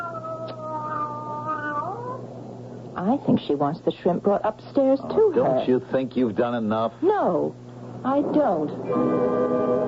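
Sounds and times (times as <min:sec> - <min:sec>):
cat meowing: 0:00.0 - 0:02.2
speech: 0:03.0 - 0:09.7.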